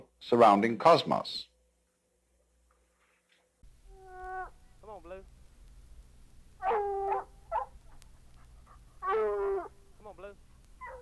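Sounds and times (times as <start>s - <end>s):
speech: 0.2s - 1.5s
dog giving high whining yelps: 6.6s - 7.8s, 9.0s - 9.8s, 10.8s - 10.9s.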